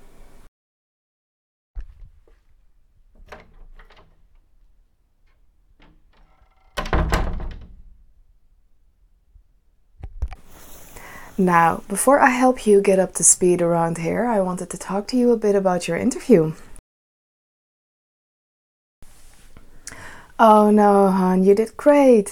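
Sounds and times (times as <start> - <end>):
door handle clicks and rattles: 1.8 - 8.6
speech: 11.4 - 16.7, 20.4 - 22.2.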